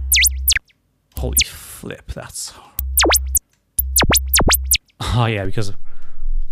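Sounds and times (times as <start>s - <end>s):
pulsating synthesizer sub-bass sweeping through a filter: 0.1s - 0.7s, 1.3s - 1.5s, 2.8s - 4.8s
speech: 1.2s - 2.8s, 5.1s - 5.9s.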